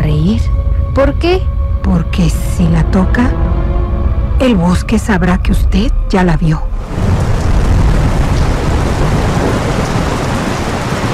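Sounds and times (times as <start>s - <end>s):
deep low rumble of thunder: 0.0s - 11.1s
speech: 0.3s - 3.6s, 4.4s - 7.0s
steady heavy rainfall: 6.7s - 11.1s.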